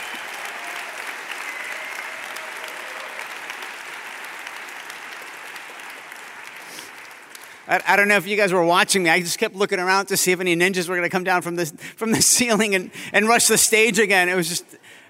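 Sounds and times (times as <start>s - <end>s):
audience applauding award winners at a food awards ceremony: 0.0s - 8.6s
speech: 7.7s - 14.9s.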